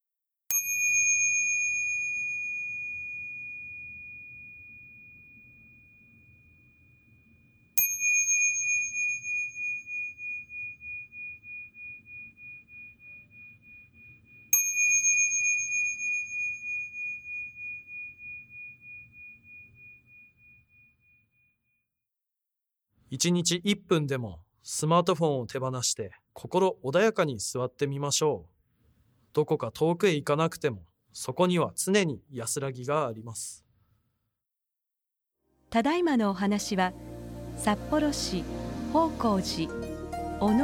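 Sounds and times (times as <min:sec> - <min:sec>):
meditation bell struck during zazen session: 0:00.5 - 0:20.8
speech: 0:23.1 - 0:28.6, 0:29.3 - 0:33.6, 0:35.7 - 0:40.6.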